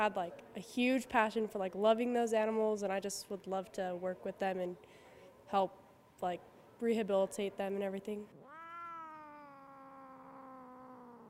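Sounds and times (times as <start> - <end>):
speech: 0.0 - 8.4
cat meowing after a sedative shot: 8.3 - 11.2.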